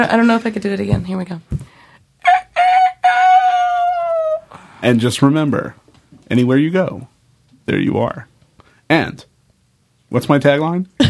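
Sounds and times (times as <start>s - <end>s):
speech: 0.0s - 1.6s, 4.8s - 7.1s, 7.7s - 8.3s, 8.9s - 9.3s, 10.1s - 11.0s
person imitating a rooster crow: 2.2s - 4.5s.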